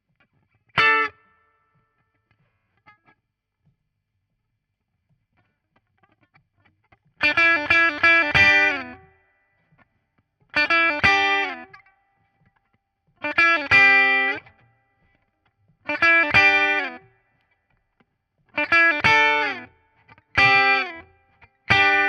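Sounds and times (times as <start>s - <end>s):
guitar solo: 0.8s - 1.3s, 7.2s - 9.1s, 10.6s - 11.9s, 13.2s - 14.7s, 15.9s - 17.1s, 18.6s - 22.0s.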